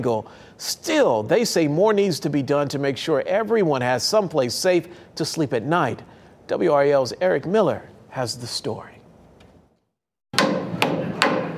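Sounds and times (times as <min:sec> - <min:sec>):
speech: 0:00.0 - 0:09.0
hammer blows on a house building site: 0:10.4 - 0:11.5.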